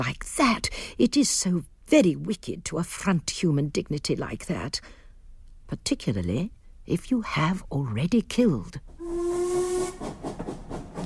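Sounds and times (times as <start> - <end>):
speech: 0.0 - 5.0, 5.7 - 9.3
early steam train whistle: 9.0 - 10.4
rush of hissing steam: 9.0 - 11.0
steam train chuffing and rumbling: 9.0 - 11.0.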